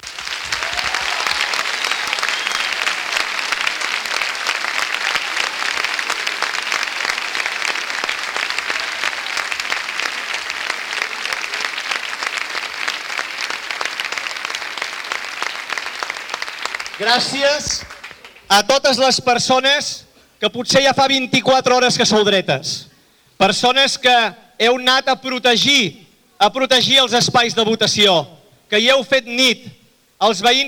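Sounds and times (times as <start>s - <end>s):
audience applause: 0.0s - 18.5s
speech: 17.0s - 17.9s, 18.5s - 30.6s.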